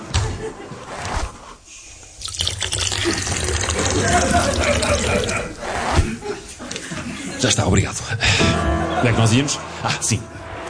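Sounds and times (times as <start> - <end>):
laughter: 0.0 - 0.9, 3.0 - 10.0
person urinating into water: 2.2 - 5.5
speech: 7.4 - 10.4.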